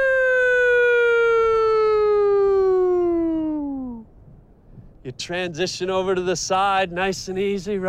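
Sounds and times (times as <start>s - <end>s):
old-style police siren wail: 0.0s - 4.0s
speech: 5.1s - 7.8s.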